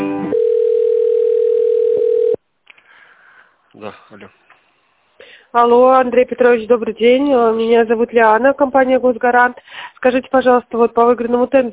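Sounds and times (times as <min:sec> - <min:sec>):
telephone on-hold melody while a business call is transferred: 0:00.1 - 0:02.4
speech: 0:05.5 - 0:11.7.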